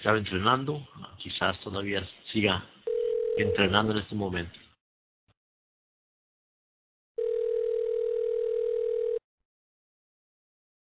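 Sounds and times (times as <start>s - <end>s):
speech: 0.0s - 2.7s, 3.4s - 4.6s
telephone ringback tone on an unanswered call: 2.9s - 3.7s, 7.2s - 9.2s.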